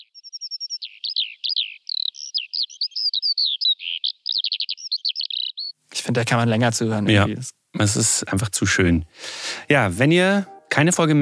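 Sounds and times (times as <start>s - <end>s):
Eurasian skylark singing: 0.0s - 5.8s
speech: 6.1s - 11.1s.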